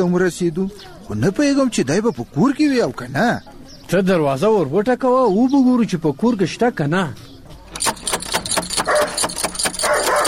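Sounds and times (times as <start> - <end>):
speech: 0.0 - 7.3
fierce guard dog barking at a house door: 8.8 - 10.2.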